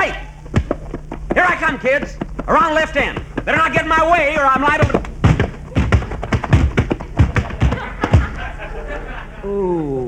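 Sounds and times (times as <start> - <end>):
kids running and colliding in a football tackle: 0.5 - 8.5
speech: 1.7 - 5.0, 9.4 - 10.0
laughter: 7.4 - 9.7.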